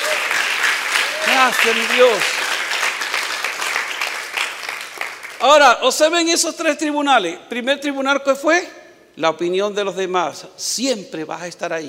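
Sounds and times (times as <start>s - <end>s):
church congregation applauding during a sermon: 0.0s - 5.7s
speech: 1.4s - 2.4s, 5.4s - 11.8s.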